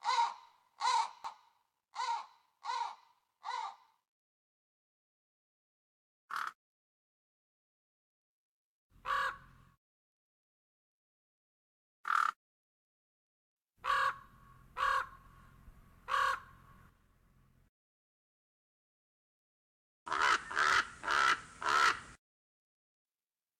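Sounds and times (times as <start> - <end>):
raven: 0.0 - 4.0, 9.0 - 9.6, 13.8 - 15.4, 16.0 - 16.7, 20.1 - 22.1.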